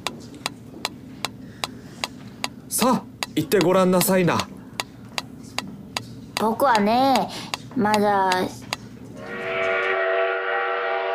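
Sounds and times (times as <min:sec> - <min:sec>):
speech: 0:02.8 - 0:04.5, 0:06.4 - 0:08.6
train whistle blaring: 0:09.2 - 0:11.1.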